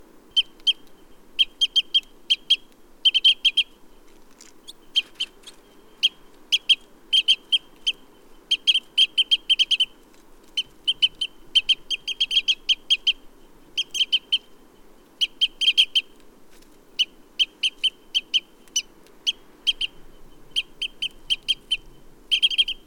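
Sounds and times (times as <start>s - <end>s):
Red Crossbill Type E02 calls: 0.2s - 16.2s, 16.9s - 22.8s.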